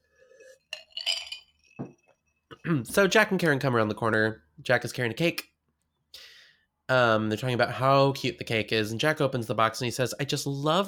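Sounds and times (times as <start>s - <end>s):
glasses clinking in a toast: 0.3s - 2.0s
speech: 2.7s - 5.5s, 6.9s - 10.8s.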